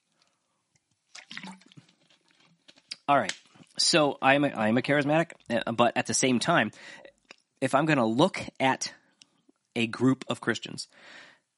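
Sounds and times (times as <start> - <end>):
person sipping and swallowing water: 1.1 - 2.9
speech: 3.1 - 7.0, 7.6 - 9.0, 9.8 - 11.3.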